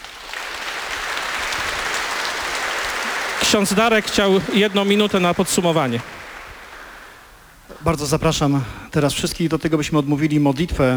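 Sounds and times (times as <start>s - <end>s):
audience applause: 0.0s - 7.5s
speech: 3.5s - 6.2s, 7.8s - 10.9s.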